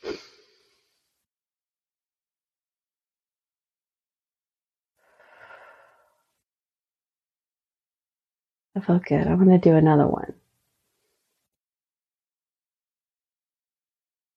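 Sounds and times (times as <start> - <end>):
long soft exhale in a guided breathing exercise: 5.0 - 6.3
deep inhale in a guided breathing exercise: 5.0 - 6.4
speech: 8.8 - 10.4.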